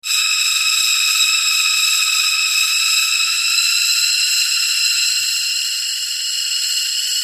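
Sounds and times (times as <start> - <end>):
gas releasing from a glass tub: 0.0 - 7.1.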